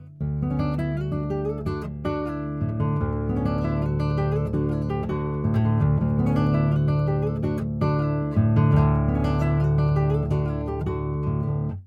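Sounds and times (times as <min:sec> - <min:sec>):
guitar: 0:00.0 - 0:11.8.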